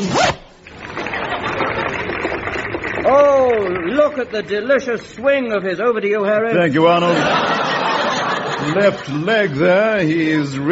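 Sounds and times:
trouser zip being pulled up: 0:00.0 - 0:05.1
laughter: 0:00.8 - 0:05.4, 0:06.5 - 0:10.7
speech: 0:03.1 - 0:07.6, 0:08.6 - 0:10.7.

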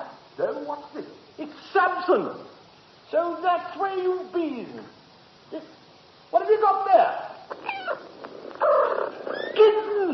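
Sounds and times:
speech: 0:00.4 - 0:02.5, 0:03.1 - 0:05.8, 0:06.5 - 0:07.3
newborn kittens mewing and chirruping: 0:07.5 - 0:10.0
cat purring: 0:07.5 - 0:10.1.

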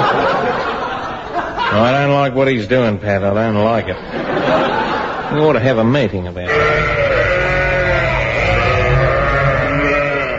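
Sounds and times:
laughter: 0:00.0 - 0:02.1, 0:03.9 - 0:05.6
speech: 0:01.7 - 0:06.9
flock of sheep bleating: 0:06.5 - 0:10.3.

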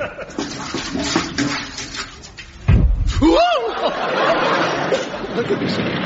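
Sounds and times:
laughter: 0:00.0 - 0:00.4, 0:03.2 - 0:06.0
paraffin pouring and glugging from a can into a stove: 0:00.2 - 0:03.2
dull thump: 0:02.6 - 0:03.3.

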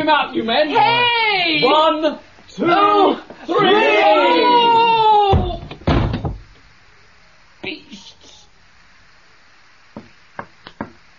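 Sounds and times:
speech: 0:00.0 - 0:04.5
door creaking: 0:05.3 - 0:06.6.

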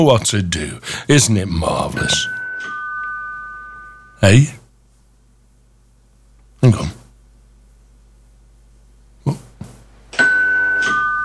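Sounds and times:
speech: 0:00.0 - 0:02.4, 0:04.2 - 0:04.6, 0:06.6 - 0:07.0
two-note doorbell chime: 0:02.0 - 0:04.2, 0:10.2 - 0:11.2.

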